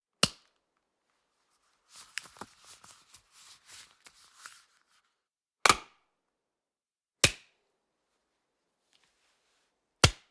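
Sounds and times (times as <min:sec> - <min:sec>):
rubber glove pulling on: 0:01.4 - 0:05.1.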